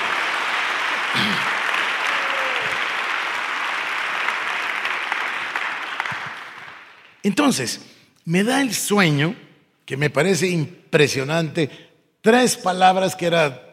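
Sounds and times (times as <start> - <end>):
crowd applauding loudly: 0.0 - 7.2
speech: 7.2 - 13.7.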